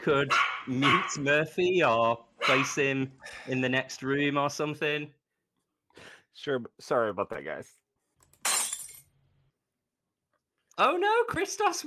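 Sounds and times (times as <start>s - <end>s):
speech: 0.0s - 5.2s, 6.0s - 7.8s, 10.8s - 11.8s
drinking glass knocked over and shattering: 8.4s - 9.1s.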